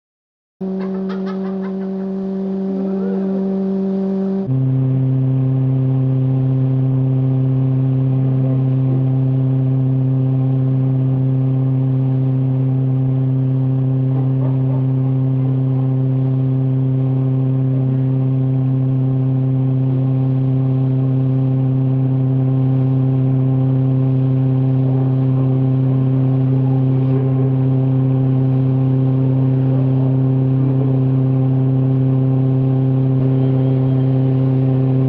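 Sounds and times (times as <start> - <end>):
fan: 0.6 - 35.0
laughter: 0.7 - 3.4.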